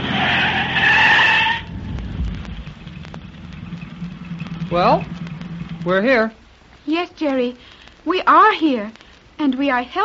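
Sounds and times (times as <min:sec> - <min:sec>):
car skidding with high-pitched tire squeal: 0:00.0 - 0:02.0
road noise: 0:00.0 - 0:08.0
low rumbling car engine: 0:01.6 - 0:06.5
speech: 0:04.7 - 0:05.1, 0:05.8 - 0:10.0.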